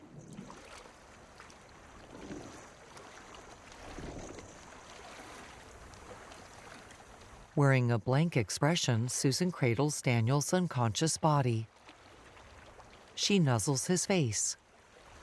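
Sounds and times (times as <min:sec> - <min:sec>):
rough open-sea water churning and splashing: 0:00.0 - 0:07.6, 0:11.6 - 0:15.2
speech: 0:07.6 - 0:11.8, 0:13.2 - 0:14.6.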